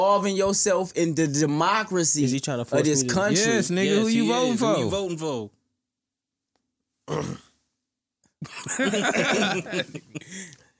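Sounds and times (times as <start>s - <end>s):
speech: 0.0s - 5.6s, 7.1s - 7.4s, 8.4s - 10.4s
throat clearing: 7.0s - 7.6s
laughter: 8.4s - 10.5s.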